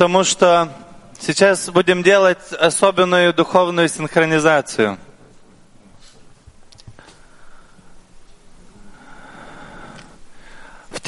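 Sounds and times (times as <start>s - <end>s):
speech: 0.0s - 5.1s
several people breathing in a quiet room: 5.4s - 11.0s.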